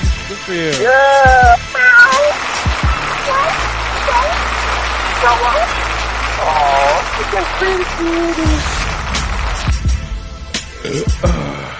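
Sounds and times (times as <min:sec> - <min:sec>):
speech: 0:00.3 - 0:01.8, 0:05.2 - 0:05.8, 0:06.4 - 0:08.8, 0:10.8 - 0:11.6
cat meowing: 0:00.8 - 0:02.4, 0:03.2 - 0:04.4
steady low droning background: 0:02.9 - 0:11.6.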